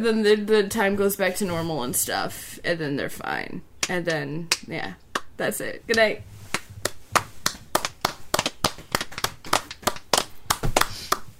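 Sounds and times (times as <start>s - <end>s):
speech: 0.0s - 6.3s
sharp hand claps: 3.8s - 5.3s, 5.9s - 11.3s.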